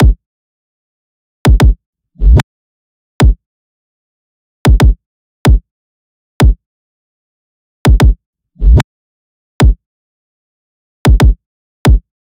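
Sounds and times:
kick drum loop: 0:01.5 - 0:02.4, 0:04.7 - 0:05.6, 0:07.9 - 0:08.8, 0:11.1 - 0:12.1.

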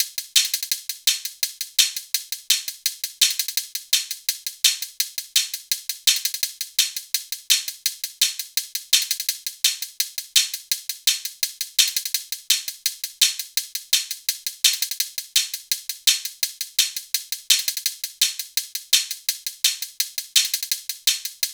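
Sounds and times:
hi-hat drum loop: 0:00.0 - 0:21.5.

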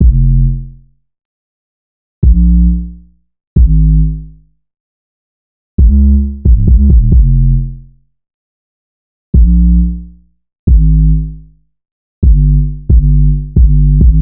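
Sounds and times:
synth bass loop: 0:00.0 - 0:00.6, 0:02.2 - 0:03.0, 0:03.6 - 0:04.2, 0:05.8 - 0:07.8, 0:09.4 - 0:10.1, 0:10.7 - 0:11.3, 0:12.2 - 0:14.2.

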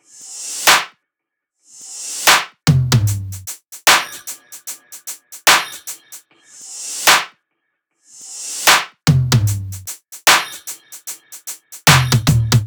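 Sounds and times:
drum top loops: 0:02.2 - 0:06.2, 0:08.6 - 0:12.6.

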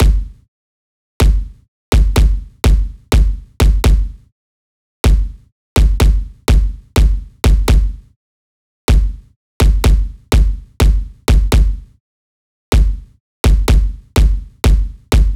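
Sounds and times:
pop kick drum loop: 0:00.0 - 0:00.4, 0:01.2 - 0:04.2, 0:05.0 - 0:08.0, 0:08.9 - 0:11.8, 0:12.7 - 0:15.3.

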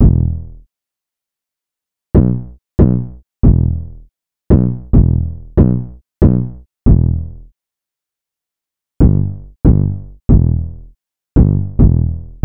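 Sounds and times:
808 drum machine loop in E minor: 0:00.0 - 0:00.6, 0:02.2 - 0:07.4, 0:09.0 - 0:10.8, 0:11.4 - 0:12.4.

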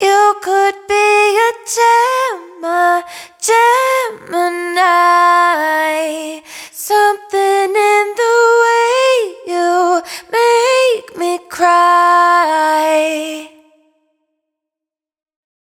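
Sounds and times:
wet vocal hook in A flat at 140 BPM: 0:00.0 - 0:13.7.

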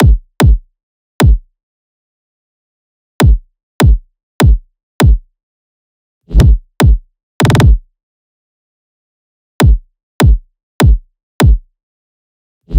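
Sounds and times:
kick drum loop at 150 BPM: 0:00.0 - 0:00.6, 0:01.2 - 0:01.4, 0:03.2 - 0:05.2, 0:06.4 - 0:07.8, 0:09.6 - 0:11.7.

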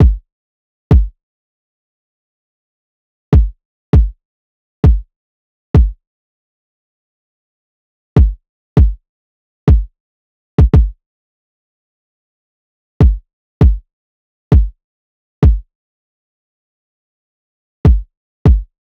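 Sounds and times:
kick drum loop: 0:00.0 - 0:00.2, 0:00.9 - 0:01.1, 0:03.3 - 0:04.2, 0:04.8 - 0:05.1, 0:05.8 - 0:06.0, 0:08.2 - 0:09.0, 0:09.7 - 0:09.9, 0:10.6 - 0:11.0, 0:13.0 - 0:13.8, 0:14.5 - 0:14.7, 0:15.4 - 0:15.6, 0:17.9 - 0:18.7.

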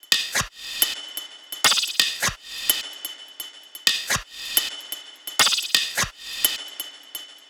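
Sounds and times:
percussion loop at 128 BPM: 0:00.0 - 0:07.4.

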